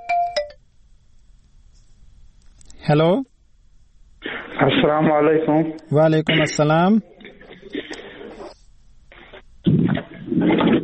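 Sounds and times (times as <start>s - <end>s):
electronic telephone ringing with an incoming call to a radio call-in show: 0.0s - 0.6s
speech: 2.9s - 3.3s, 4.6s - 7.1s.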